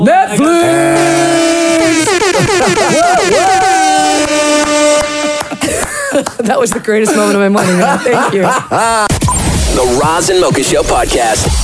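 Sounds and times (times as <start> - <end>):
air horn blaring: 0.6 - 5.9
laughter: 2.1 - 3.4, 5.0 - 9.2
speech: 6.6 - 9.2, 9.8 - 11.6.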